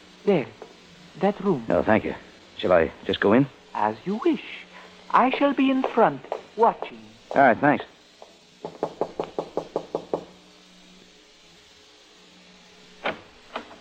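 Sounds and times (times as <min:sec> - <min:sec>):
speech: 0:00.2 - 0:00.6, 0:01.2 - 0:07.9
knocking on a door: 0:08.6 - 0:10.4.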